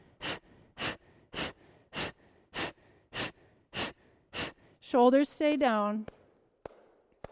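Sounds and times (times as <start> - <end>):
rapid forceful exhales through the nose in a breathing exercise: 0.0 - 4.8
speech: 4.9 - 6.2.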